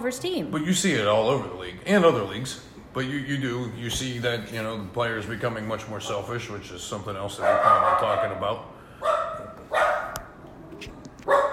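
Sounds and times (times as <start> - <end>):
speech: 0.0 - 9.1
female pet dog yipping: 7.4 - 8.4, 9.0 - 10.3, 11.3 - 11.5
female pet dog barking: 7.4 - 10.3, 11.3 - 11.5.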